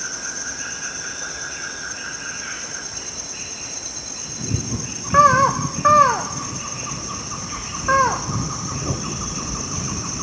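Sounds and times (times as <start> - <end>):
continuous insect hum: 0.0 - 10.2
Buckley's forest falcon downward-curving calls: 5.1 - 6.5, 7.9 - 8.4.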